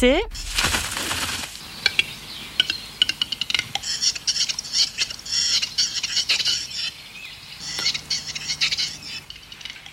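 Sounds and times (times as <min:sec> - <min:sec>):
speech: 0:00.0 - 0:00.4
quiet forest background: 0:00.0 - 0:09.9
western capercaillie raspy scraping sounds: 0:03.2 - 0:06.9, 0:07.6 - 0:09.8.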